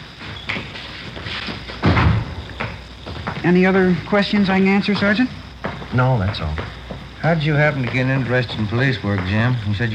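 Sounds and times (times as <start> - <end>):
door closing thump: 1.8 - 3.4
speech: 3.4 - 9.9.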